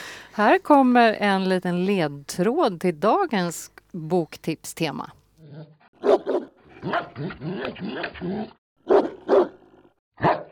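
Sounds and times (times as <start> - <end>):
speech: 0.4 - 5.8, 6.8 - 9.0, 10.2 - 10.4
dog growling and whining: 5.4 - 5.9, 6.7 - 8.6
dog barking: 5.6 - 8.1, 8.8 - 9.6, 10.2 - 10.4.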